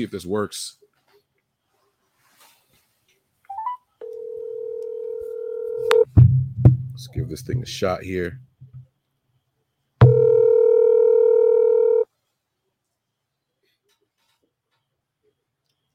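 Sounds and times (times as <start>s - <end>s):
speech: 0.0s - 0.8s, 7.0s - 8.5s
steady telephone tone: 3.5s - 6.1s, 10.0s - 12.1s.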